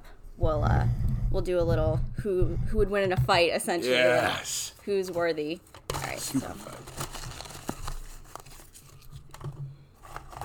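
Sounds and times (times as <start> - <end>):
speech: 0.5 - 7.0
small paper cups being crumpled and folded: 4.8 - 10.4.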